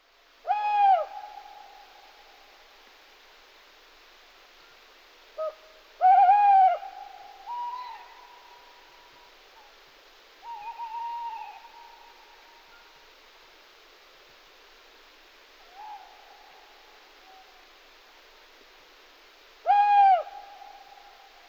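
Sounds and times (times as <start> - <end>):
tawny owl calling: 0.4 - 2.1, 5.4 - 8.8, 10.4 - 13.0, 15.6 - 17.7, 19.6 - 21.2.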